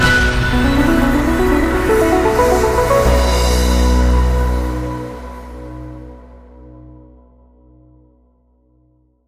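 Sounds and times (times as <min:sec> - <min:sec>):
big win jingle ending: 0:00.4 - 0:04.5.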